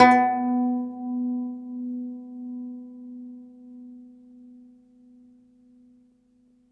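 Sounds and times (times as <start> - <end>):
segundo domra plucked strings: 0.0 - 1.6.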